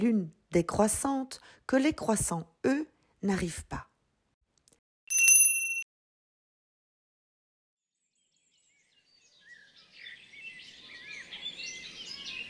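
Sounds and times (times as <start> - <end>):
speech: 0.0 - 3.9
bell-like ding: 5.1 - 5.8.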